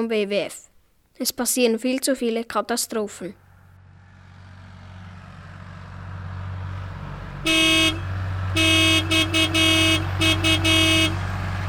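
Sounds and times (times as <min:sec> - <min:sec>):
speech: 0:00.0 - 0:03.4
road traffic rumble: 0:02.8 - 0:11.6
car horns honking: 0:07.4 - 0:11.4.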